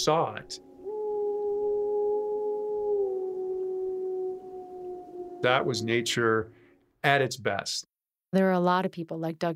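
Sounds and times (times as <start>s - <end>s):
speech: 0.0s - 0.7s, 5.4s - 9.5s
wild wolf howling in Yellowstone: 0.5s - 6.6s.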